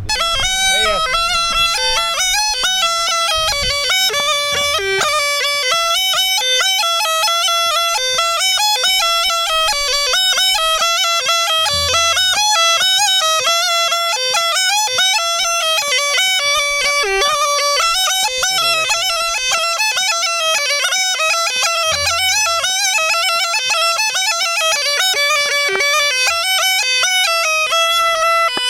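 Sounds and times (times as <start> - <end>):
small gajda bagpipe playing slowly: 0.0 - 28.6.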